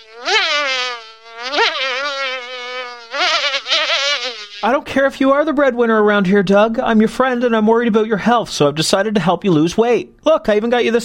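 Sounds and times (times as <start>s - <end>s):
large fly buzzing: 0.0s - 4.7s
speech: 0.1s - 0.3s, 4.9s - 11.0s.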